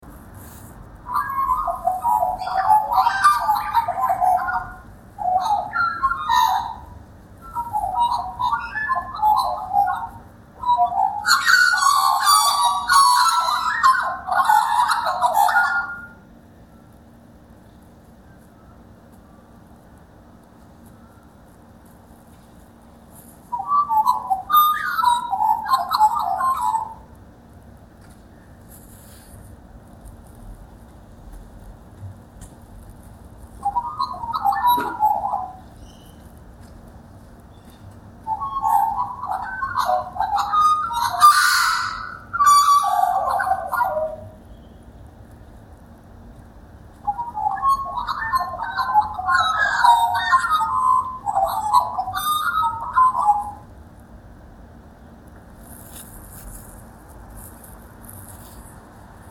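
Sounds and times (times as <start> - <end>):
magpie calling: 1.1 - 16.2, 23.5 - 27.1, 33.6 - 36.3, 37.5 - 44.8, 47.0 - 53.7.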